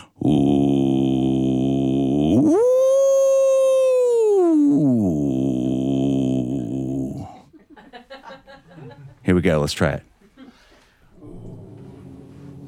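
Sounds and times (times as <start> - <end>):
human voice in a studio imitating whale song: 0.0 - 7.4
laughter: 7.3 - 9.2
speech: 9.5 - 10.1.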